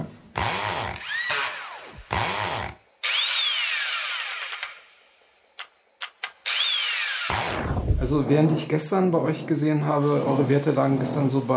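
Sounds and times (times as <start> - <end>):
power drill whining at a construction site: 0.4 - 4.8, 6.4 - 7.5
speech: 8.1 - 11.5.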